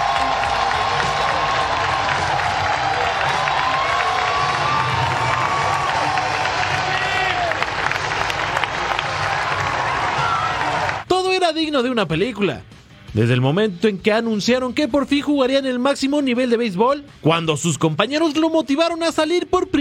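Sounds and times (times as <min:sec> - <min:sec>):
large baseball stadium crowd roaring and cheering at night: 0:00.0 - 0:11.0
scattered shouts from baseball stadium crowd: 0:00.0 - 0:11.0
speech: 0:11.5 - 0:19.8.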